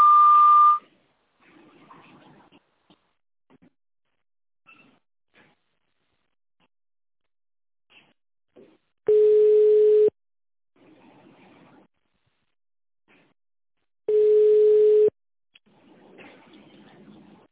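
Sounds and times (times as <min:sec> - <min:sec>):
long telephone signal tone on an automated phone line: 0:00.0 - 0:00.8, 0:09.1 - 0:10.1, 0:14.1 - 0:15.1.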